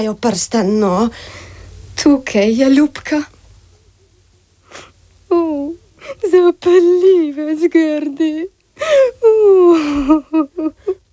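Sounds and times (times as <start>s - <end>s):
speech: 0.0s - 3.3s, 6.1s - 11.0s
person crying: 5.3s - 11.1s.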